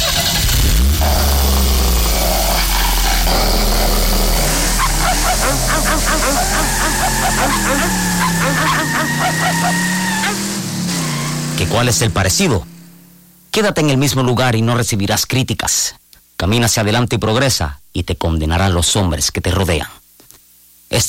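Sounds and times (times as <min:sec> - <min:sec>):
car engine cranking, starting and idling: 0:00.0 - 0:13.2
dogs barking: 0:02.0 - 0:11.3
speech: 0:11.6 - 0:12.8, 0:13.6 - 0:20.0.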